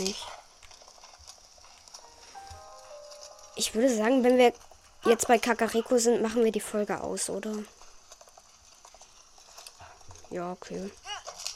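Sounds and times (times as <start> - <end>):
speech: 0.0 - 0.4, 3.6 - 7.8, 10.3 - 11.1
horse hooves clip-clopping in a video game: 0.0 - 11.5
faint bright video game sounds: 2.1 - 4.5.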